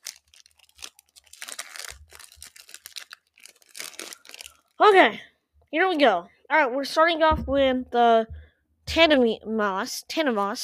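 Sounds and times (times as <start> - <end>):
Pokemon card booster pack foil tearing open: 0.0 - 4.7
speech: 4.8 - 8.4, 9.0 - 10.6.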